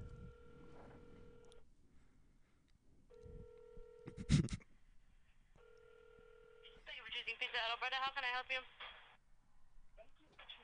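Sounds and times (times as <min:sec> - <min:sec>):
electronic telephone ringback tones on an outgoing call: 0:00.0 - 0:01.6, 0:03.1 - 0:04.1, 0:05.6 - 0:06.8
speech: 0:07.6 - 0:08.8.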